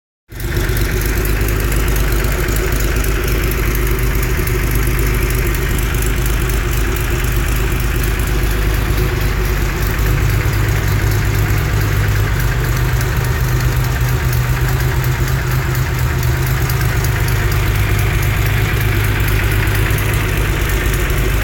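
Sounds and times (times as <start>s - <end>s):
911 Turbo 930 engine header ticking: 0.3s - 21.4s.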